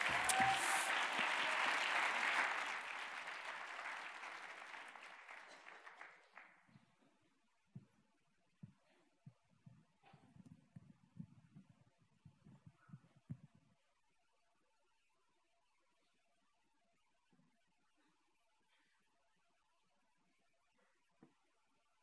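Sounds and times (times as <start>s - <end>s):
church congregation applauding: 0.0s - 6.7s.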